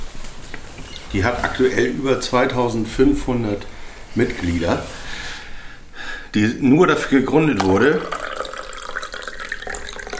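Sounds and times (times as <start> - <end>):
speech: 1.1 - 5.0, 6.3 - 8.2
water running from a tap: 7.8 - 10.1.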